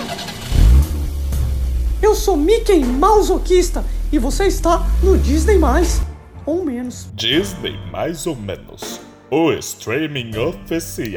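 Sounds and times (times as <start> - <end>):
car engine starting and idling: 0.0 - 8.6
speech: 2.1 - 11.1.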